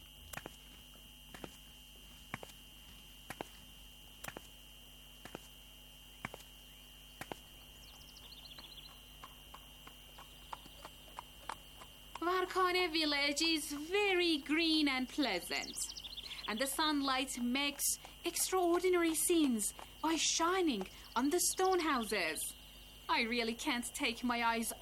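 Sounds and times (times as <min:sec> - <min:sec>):
horse hooves clip-clopping in a horse breeding stable in Varkane village: 0:00.0 - 0:04.6, 0:06.2 - 0:15.2, 0:16.6 - 0:22.1
steady high-pitched hum: 0:00.0 - 0:24.8
faint chirps: 0:06.0 - 0:12.6, 0:15.5 - 0:17.0, 0:19.2 - 0:23.2
speech: 0:12.7 - 0:15.9, 0:16.5 - 0:22.5, 0:23.1 - 0:24.8.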